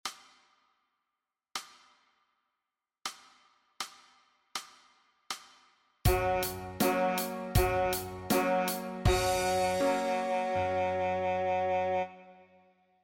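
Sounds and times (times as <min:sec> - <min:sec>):
saxophone playing E flat: 0:06.1 - 0:12.6.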